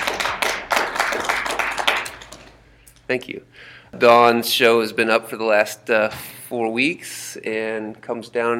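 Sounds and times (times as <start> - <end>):
applause from a small audience: 0.0 - 2.5
speech: 3.1 - 8.5.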